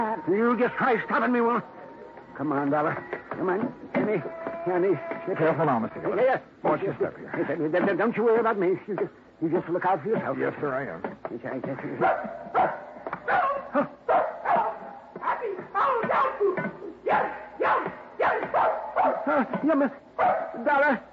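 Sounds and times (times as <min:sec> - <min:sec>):
speech: 0:00.0 - 0:01.8, 0:02.4 - 0:14.0, 0:19.4 - 0:21.0
female dog barking and yipping: 0:12.0 - 0:19.5, 0:20.2 - 0:20.8.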